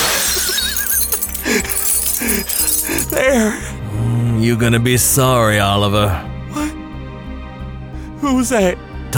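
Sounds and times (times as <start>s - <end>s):
drinking glass shattering against a mirror: 0.0s - 3.3s
tinkling glass shards: 0.0s - 3.3s
speech: 2.3s - 3.8s, 4.4s - 6.3s, 8.3s - 9.1s.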